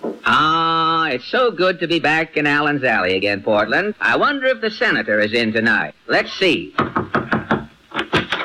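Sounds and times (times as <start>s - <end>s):
speech: 0.3s - 6.8s
firm knocking on a wooden door: 6.8s - 8.3s.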